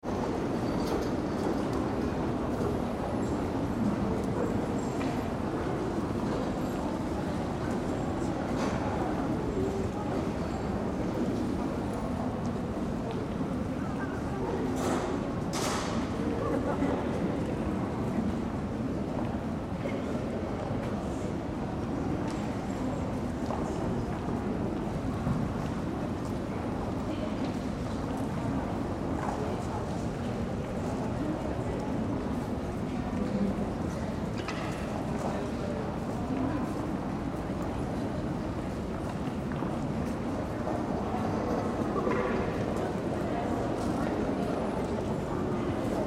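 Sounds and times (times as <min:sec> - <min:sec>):
museum hall ambience: 0:00.0 - 0:46.0.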